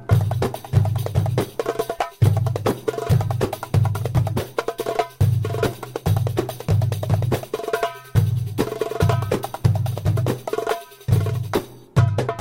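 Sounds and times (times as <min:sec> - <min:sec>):
drum dance ringtone: 0:00.1 - 0:12.3.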